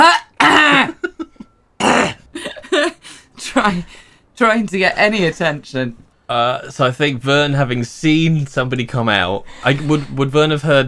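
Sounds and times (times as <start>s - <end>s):
person acting out a coughing fit behind a bush in a garden: 0.0s - 3.0s
speech: 3.6s - 10.8s.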